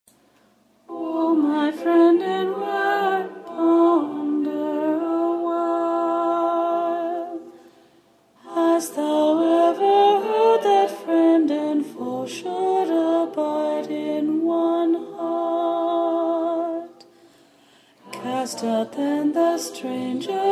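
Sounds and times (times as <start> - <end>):
mezzo soprano singing: 0.9 - 7.5, 8.4 - 17.0, 18.0 - 20.5.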